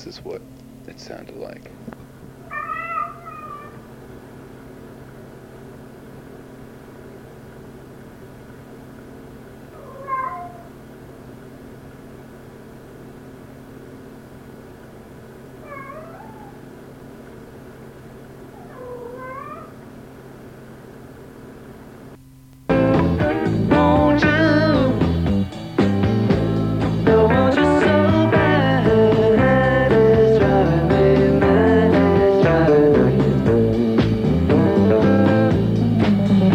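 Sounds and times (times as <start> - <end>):
speech: 0.0 - 2.0
steady low mechanical hum: 0.0 - 36.5
cat meowing to be let out: 2.4 - 3.8, 9.8 - 10.8, 15.6 - 16.7, 18.5 - 19.8.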